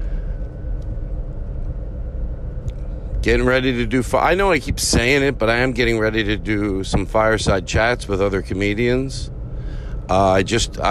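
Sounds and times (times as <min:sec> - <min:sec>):
car driving down a street: 0:00.0 - 0:10.8
speech: 0:03.2 - 0:09.4, 0:10.1 - 0:10.8.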